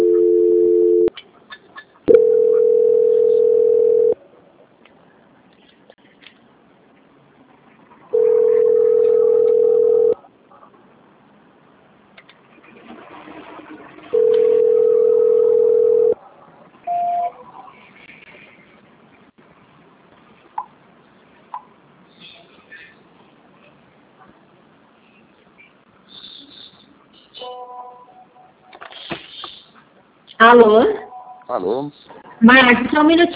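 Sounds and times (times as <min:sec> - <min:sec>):
telephone line ring tones while a call is transferred: 0:00.0 - 0:01.1, 0:02.1 - 0:04.2, 0:08.1 - 0:10.2, 0:14.1 - 0:16.2
speech: 0:30.5 - 0:33.3.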